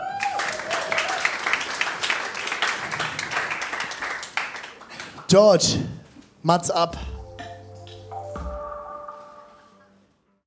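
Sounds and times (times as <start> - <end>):
audience applause: 0.0 - 5.3
speech: 5.3 - 7.1.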